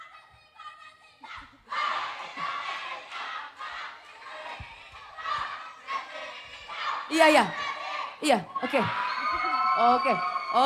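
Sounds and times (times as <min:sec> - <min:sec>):
crowd of young voices shouting a group cheer chant: 0:01.2 - 0:10.6
speech: 0:07.1 - 0:07.6, 0:08.2 - 0:09.0, 0:09.8 - 0:10.6
whoops and yells: 0:08.6 - 0:10.6.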